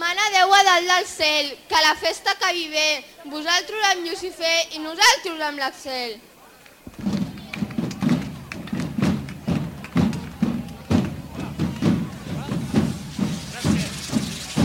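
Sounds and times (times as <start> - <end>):
speech: 0.6 - 6.3
lively crowd murmuring: 5.7 - 14.6
rhythmic pounding beat of drums: 6.8 - 14.6
fireworks hissing during devils' dance: 11.4 - 14.6.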